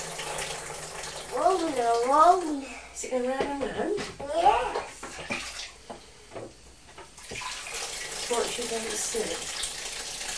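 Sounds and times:
water splashing as a vessel fills: 0.0s - 2.5s, 7.2s - 10.3s
speech: 1.6s - 4.9s, 8.3s - 9.6s.

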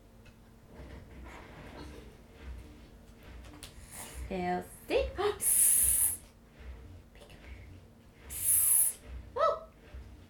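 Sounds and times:
speech: 4.3s - 5.6s
child hissing like a snake: 5.4s - 6.2s, 8.3s - 9.0s.

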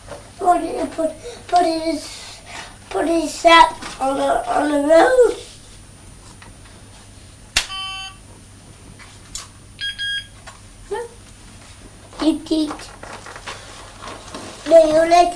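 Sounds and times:
young child's voice: 0.4s - 5.6s, 12.2s - 13.0s, 14.6s - 15.3s
speech: 0.5s - 2.2s, 3.0s - 5.4s, 14.8s - 15.3s
toy phone buttons being pressed, beeping: 7.7s - 8.2s, 9.8s - 10.3s.

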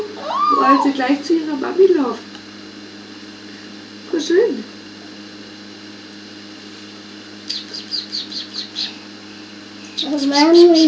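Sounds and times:
baby chicks cheeping: 0.0s - 1.0s, 7.5s - 10.8s
faint low hum: 0.0s - 2.4s, 7.4s - 10.8s
speech: 0.6s - 2.3s, 4.2s - 4.8s, 10.1s - 10.8s.

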